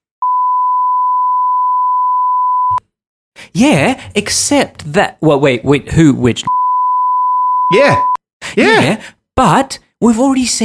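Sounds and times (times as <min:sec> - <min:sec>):
censor beep: 0:00.2 - 0:02.8, 0:06.5 - 0:08.2
speech: 0:03.6 - 0:06.6, 0:07.7 - 0:10.6.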